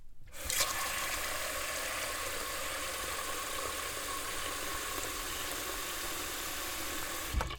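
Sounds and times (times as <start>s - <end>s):
water running into a large cooking pot: 0.3s - 7.5s.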